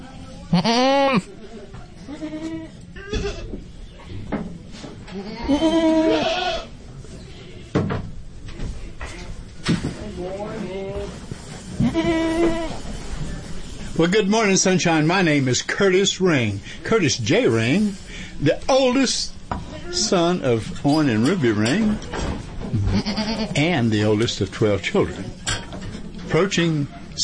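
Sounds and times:
faint voices murmuring: 0:00.0 - 0:07.7, 0:08.8 - 0:27.2
goats bleating at a livestock auction: 0:00.5 - 0:01.3, 0:02.1 - 0:03.6, 0:05.2 - 0:06.8, 0:11.8 - 0:12.8, 0:22.8 - 0:23.6
speech: 0:00.5 - 0:01.4, 0:02.2 - 0:03.5, 0:05.2 - 0:06.4, 0:14.0 - 0:19.3, 0:19.9 - 0:22.1, 0:22.7 - 0:25.3, 0:26.3 - 0:27.2.

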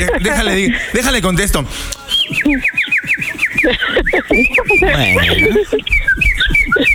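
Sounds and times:
people talking and laughing: 0:00.0 - 0:06.9
speech: 0:00.0 - 0:06.9
bird whistling and chirping: 0:02.0 - 0:06.9.

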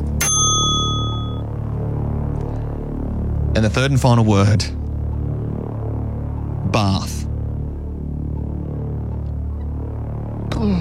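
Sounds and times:
low hum: 0:00.0 - 0:10.7
bright metallic bell ding for a correct answer in a word game: 0:00.2 - 0:01.4
speech: 0:03.6 - 0:04.8, 0:06.8 - 0:07.2.

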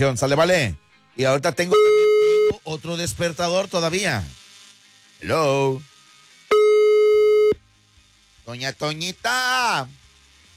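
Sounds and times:
speech: 0:00.0 - 0:02.0, 0:02.6 - 0:04.4, 0:05.2 - 0:05.9, 0:08.5 - 0:10.0
telephone busy signal during redialing: 0:01.8 - 0:02.6, 0:06.5 - 0:07.6.

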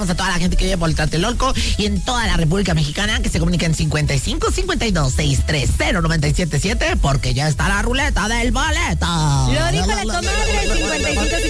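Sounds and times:
speech: 0:00.0 - 0:11.4
telephone ringing with an incoming call: 0:09.9 - 0:11.4.

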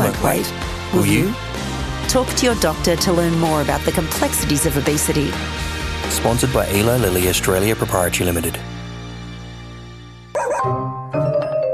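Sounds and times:
speech: 0:00.2 - 0:08.7
therapy dog barking: 0:10.4 - 0:10.8.

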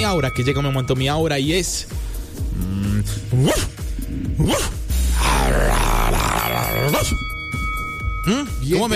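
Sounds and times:
speech: 0:00.1 - 0:04.8, 0:05.5 - 0:07.3, 0:08.2 - 0:08.9
German shepherd dog barking: 0:03.4 - 0:03.7, 0:04.4 - 0:04.7.

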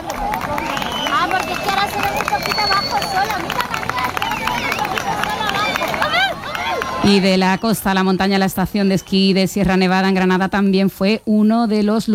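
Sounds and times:
crowd on a beach shouting and cheering: 0:00.0 - 0:09.2
speech: 0:01.5 - 0:03.9, 0:07.0 - 0:12.1.

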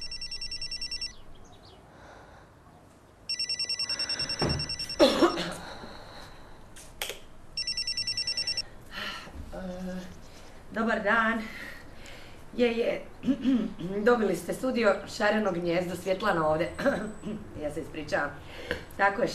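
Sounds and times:
telephone buzzing ring tone on the line during a call: 0:00.0 - 0:01.2, 0:03.3 - 0:05.4, 0:07.6 - 0:08.6
speech: 0:10.8 - 0:11.6, 0:12.6 - 0:19.3.

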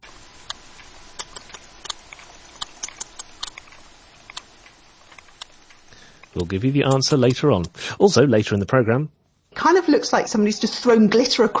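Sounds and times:
steady hiss: 0:00.0 - 0:11.5
sperm whale clicks: 0:00.4 - 0:07.8
speech: 0:06.4 - 0:11.5.

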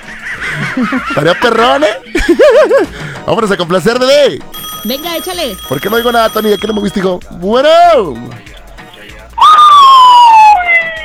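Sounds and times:
laughter: 0:00.0 - 0:03.8
speech: 0:00.8 - 0:08.5
police car siren: 0:09.4 - 0:11.0.

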